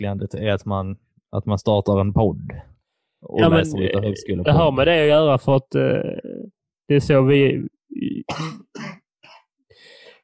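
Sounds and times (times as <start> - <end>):
speech: 0.0 - 9.0
throat clearing: 8.2 - 9.5
soft light coughs: 8.3 - 9.5.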